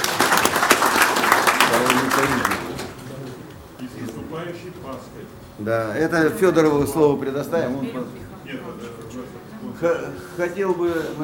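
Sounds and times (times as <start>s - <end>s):
room full of people applauding: 0.0s - 3.5s
speech: 4.5s - 9.0s, 9.8s - 11.2s.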